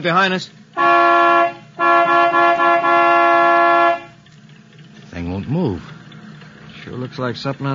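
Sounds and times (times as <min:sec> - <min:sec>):
speech: 0:00.0 - 0:01.0, 0:05.4 - 0:06.0, 0:06.9 - 0:07.7
truck horn honking: 0:00.8 - 0:04.3.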